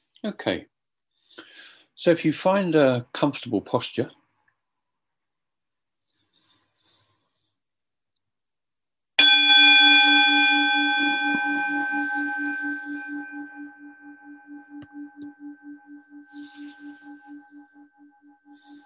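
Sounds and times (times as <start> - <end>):
speech: 0.2 - 0.7, 1.3 - 4.2
meditation gong struck and ringing: 9.2 - 18.8.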